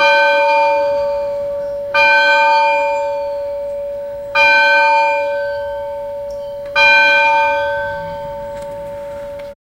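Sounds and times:
medieval church bells ringing: 0.0 - 9.6.

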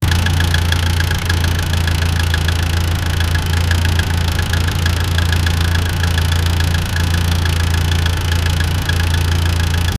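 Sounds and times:
car engine idling: 0.0 - 9.9.

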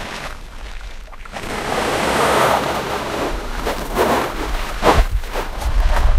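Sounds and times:
jeep driving on beach sand: 1.4 - 6.0.

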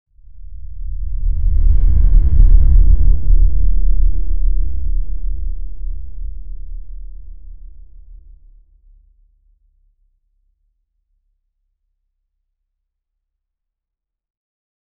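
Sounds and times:
deep cinematic whoosh: 0.2 - 8.4.

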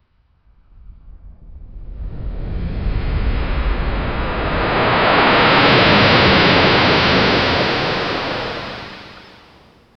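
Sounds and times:
huge ocean wave crashing with a boom: 2.4 - 9.9.

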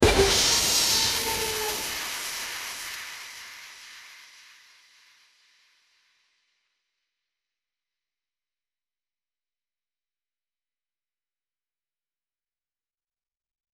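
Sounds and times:
clumsy dramatic crash: 0.0 - 2.2.

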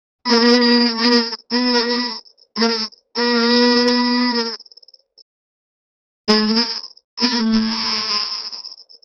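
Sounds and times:
cartoon beetle buzzing: 0.3 - 4.8, 6.3 - 9.0.

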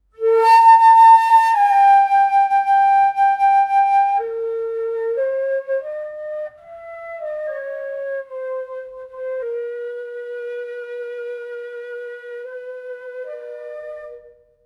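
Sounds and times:
sad Khmer flute melody: 0.0 - 14.6.

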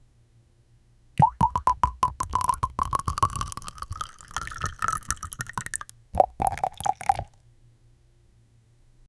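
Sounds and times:
lotion pouring: 1.2 - 7.4.

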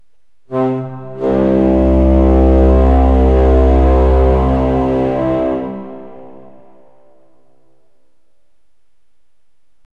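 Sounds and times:
deep ancient horn wind instrument: 0.5 - 7.7.

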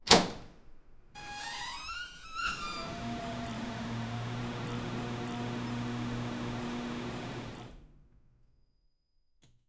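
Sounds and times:
airlock door opening: 1.2 - 7.8.

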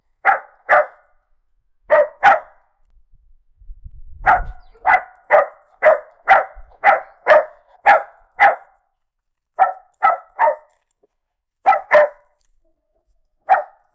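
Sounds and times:
dog barking: 0.2 - 1.1, 1.9 - 2.6, 4.2 - 8.8, 9.6 - 10.8, 11.6 - 12.3, 13.4 - 13.9.

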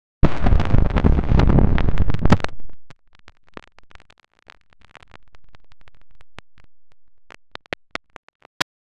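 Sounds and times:
lightning: 0.2 - 2.8
intense glitch effect: 0.2 - 8.6.

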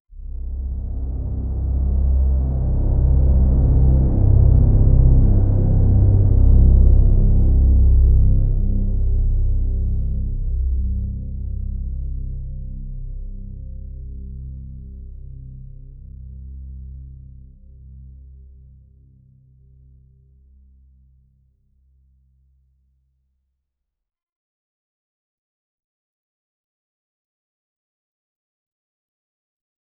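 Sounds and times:
low ominous drone: 0.1 - 20.5.

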